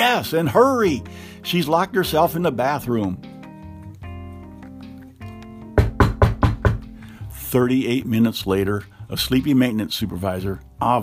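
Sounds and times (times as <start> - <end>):
speech: 0.0 - 3.3, 7.5 - 11.0
maintenance supervisor knocking on a room door on a rainy night: 5.8 - 7.0.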